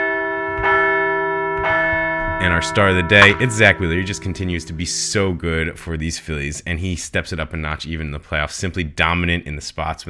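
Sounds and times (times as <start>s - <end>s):
large bell ringing: 0.0s - 5.7s
speech: 2.4s - 10.0s.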